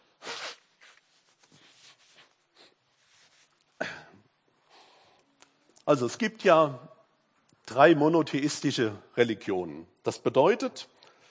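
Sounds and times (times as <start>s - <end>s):
person blowing nose: 0.0s - 3.4s
soft sniffs: 0.2s - 1.0s
speech: 5.9s - 6.9s, 7.7s - 10.9s.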